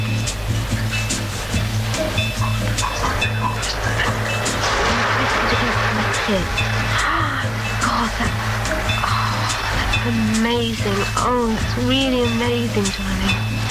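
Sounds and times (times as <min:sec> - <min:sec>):
low hum: 0:00.0 - 0:13.6
shower running at full flow: 0:00.0 - 0:13.6
speech: 0:06.3 - 0:06.6, 0:10.1 - 0:13.4.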